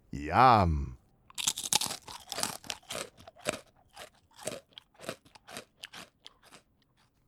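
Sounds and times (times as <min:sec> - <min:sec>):
speech: 0:00.2 - 0:00.9
munching on crunchy fried tortellini: 0:00.2 - 0:07.2.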